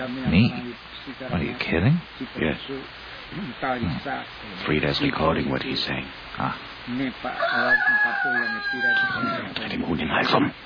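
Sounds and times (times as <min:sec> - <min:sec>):
speech: 0:00.0 - 0:10.6
rooster crowing loudly with a strained wavering tone: 0:07.2 - 0:09.6.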